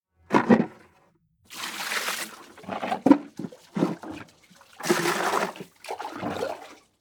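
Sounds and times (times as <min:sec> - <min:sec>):
diaper laundry: 0:01.5 - 0:06.9.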